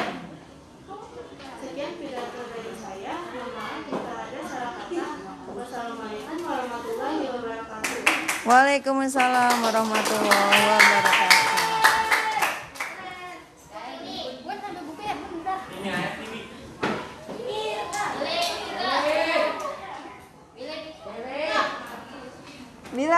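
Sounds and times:
lively overlapping children's voices and chatter: 0.8s - 8.3s, 9.9s - 22.8s
speech: 8.5s - 11.5s
group of children clapping and cheering after a child's speech: 9.2s - 13.4s, 17.7s - 19.8s.

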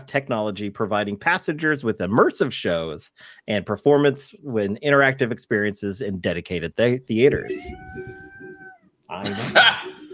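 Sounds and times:
speech: 0.0s - 8.2s, 9.1s - 10.0s
cat meowing: 7.4s - 8.9s
laughter: 9.2s - 10.1s.

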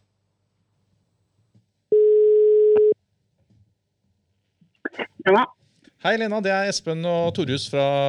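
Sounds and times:
telephone ringback tone while placing a call: 1.9s - 3.0s
speech: 5.2s - 8.0s.

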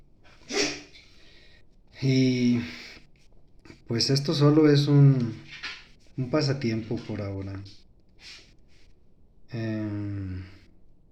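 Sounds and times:
dog snorting or sneezing: 0.3s - 1.0s
speech: 2.0s - 2.8s, 3.9s - 8.4s, 9.5s - 10.6s.

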